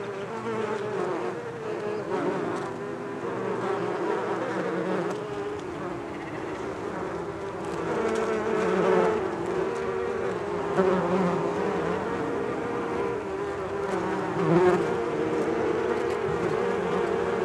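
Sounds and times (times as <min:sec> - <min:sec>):
bees buzzing in a steady hum: 0:00.0 - 0:17.4.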